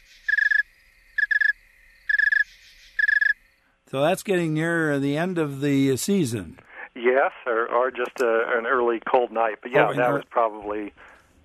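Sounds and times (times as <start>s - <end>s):
snowy tree cricket chirping slowly: 0.0s - 3.8s
speech: 3.9s - 11.1s.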